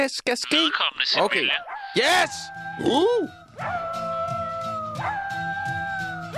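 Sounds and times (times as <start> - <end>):
speech: 0.0 - 3.8
dog barks and howls sampled into a pop song: 3.6 - 4.2, 4.8 - 6.3.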